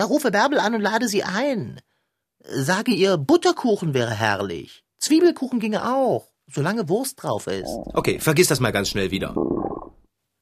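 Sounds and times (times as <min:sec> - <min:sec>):
speech: 0:00.0 - 0:09.6
stomach gurgling rumble: 0:07.6 - 0:10.1.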